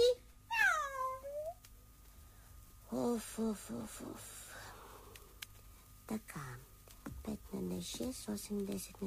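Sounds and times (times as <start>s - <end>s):
cat meowing: 0.5s - 1.5s
speech: 3.2s - 4.4s, 6.1s - 9.0s.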